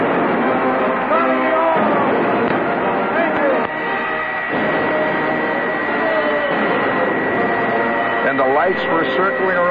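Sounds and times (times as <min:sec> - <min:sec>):
concert crowd screaming and cheering: 0:00.0 - 0:09.6
shrill shrieks: 0:03.7 - 0:09.6
speech: 0:08.8 - 0:09.6.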